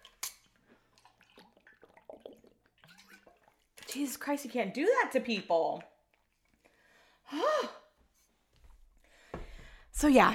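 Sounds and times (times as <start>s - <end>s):
person sipping and swallowing water: 0.0s - 4.0s, 5.8s - 7.2s
speech: 4.0s - 5.9s, 10.0s - 10.3s.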